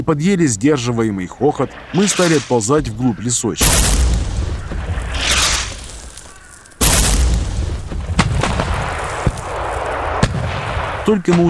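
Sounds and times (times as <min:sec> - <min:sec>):
speech: 0:00.0 - 0:04.5, 0:11.1 - 0:11.4
dull heavy blasts of shelling near a stretch of woods: 0:03.6 - 0:10.0
loud booming explosion of shelling near woods: 0:03.6 - 0:11.0.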